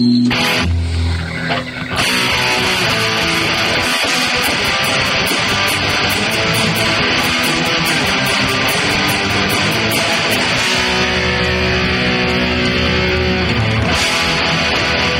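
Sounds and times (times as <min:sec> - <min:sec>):
dense buzzing musical backing: 0:00.0 - 0:15.1
loud harsh distorted game segment intro music: 0:00.3 - 0:15.1
steady rhythmic ticking percussion: 0:01.9 - 0:15.1.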